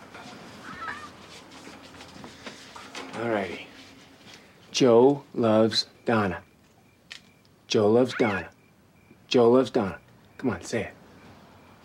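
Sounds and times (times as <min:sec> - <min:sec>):
rustling: 0:00.0 - 0:04.7
speech: 0:03.2 - 0:03.7, 0:04.8 - 0:06.5, 0:07.7 - 0:08.6, 0:09.3 - 0:11.0
soft bird chirps: 0:05.5 - 0:10.5
pet bird squawking in harsh bursts: 0:08.0 - 0:08.6.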